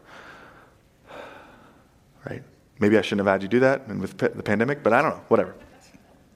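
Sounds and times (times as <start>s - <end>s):
person breathing deeply: 0.0s - 2.0s
speech: 2.2s - 5.7s.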